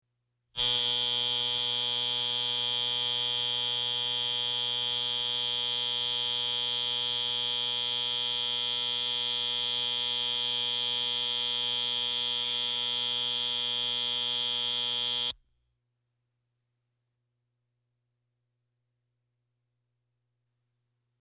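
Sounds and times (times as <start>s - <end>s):
alarm on an electric clock: 0.6s - 15.4s.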